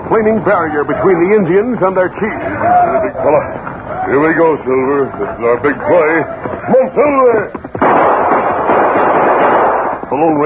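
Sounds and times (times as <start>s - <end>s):
speech: 0.1s - 7.7s, 10.2s - 10.4s
gunshots fired by a rider over the heads of a group of chiefs: 6.5s - 10.4s.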